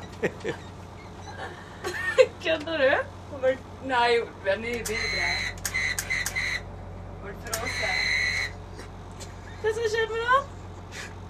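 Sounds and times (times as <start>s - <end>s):
low hum: 0.0s - 11.2s
laughter: 0.1s - 2.4s
speech: 0.2s - 0.7s, 2.4s - 5.6s, 9.6s - 10.5s
shrill whistle blowing: 4.9s - 6.6s, 7.6s - 8.6s.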